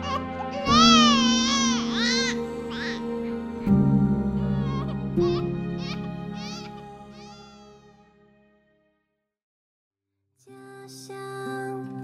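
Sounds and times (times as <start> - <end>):
newborn baby crying just after a caesarean birth: 0.0 - 3.8, 4.4 - 8.0.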